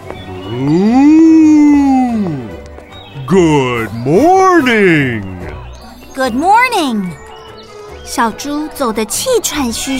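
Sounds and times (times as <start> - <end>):
speech: 0.5 - 1.1, 3.3 - 5.3, 6.2 - 7.2, 8.1 - 9.9
bull mooing: 0.5 - 2.6.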